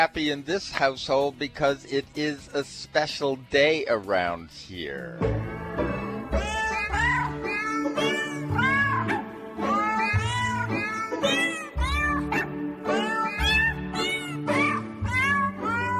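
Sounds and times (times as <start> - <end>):
speech: 0.0 - 5.4
steady low musical backing: 0.0 - 15.9
cat meows pitched to carry a tune: 5.9 - 15.9.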